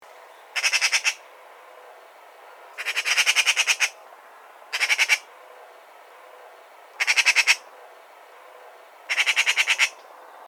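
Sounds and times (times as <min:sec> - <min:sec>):
magpie: 0:00.5 - 0:01.2, 0:02.8 - 0:04.0, 0:04.7 - 0:05.3, 0:07.0 - 0:07.7, 0:09.1 - 0:10.0.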